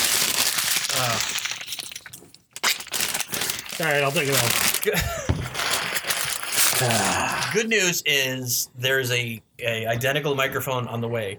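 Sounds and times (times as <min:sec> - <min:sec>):
paper bag holding a malt liquor bottle crinkling: 0:00.0 - 0:07.3
speech: 0:01.0 - 0:01.4, 0:03.8 - 0:05.5, 0:06.8 - 0:11.3.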